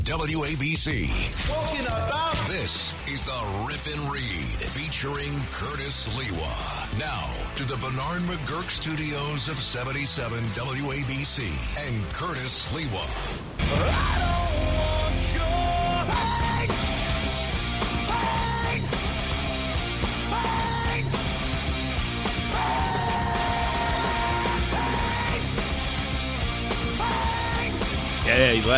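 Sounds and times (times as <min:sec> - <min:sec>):
distorted guitars in a heavy metal song: 0:00.0 - 0:28.7
speech: 0:00.1 - 0:15.5, 0:28.6 - 0:28.7
strained yelled vocals: 0:18.1 - 0:18.9, 0:20.2 - 0:21.1, 0:22.5 - 0:25.4, 0:27.0 - 0:27.8.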